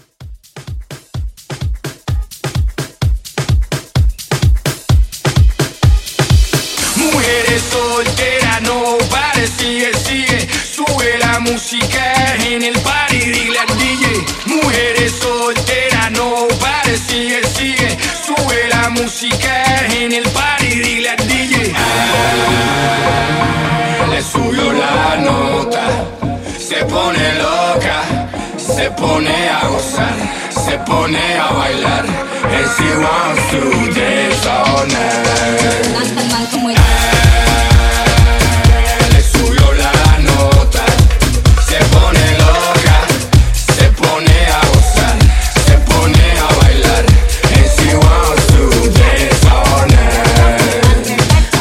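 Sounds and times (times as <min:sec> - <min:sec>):
Latin tribal drum loop: 0:00.0 - 0:51.6.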